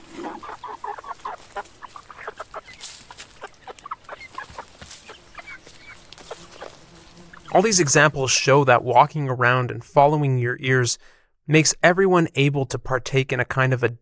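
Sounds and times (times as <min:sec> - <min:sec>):
local chickens clucking and squawking in a small town: 0:00.0 - 0:08.2
speech: 0:07.6 - 0:13.9.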